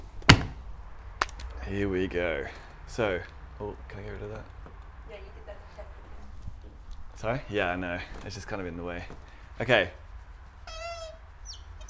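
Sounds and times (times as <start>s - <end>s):
speech: 1.7s - 5.3s, 7.2s - 10.0s
pink marker pen squeaking against a board while drawing: 10.7s - 11.8s.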